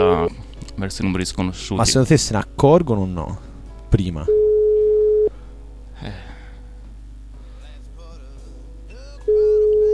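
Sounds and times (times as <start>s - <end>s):
speech: 0.0s - 4.4s
ringback tone of an unanswered phone call: 4.3s - 5.3s, 9.3s - 9.9s.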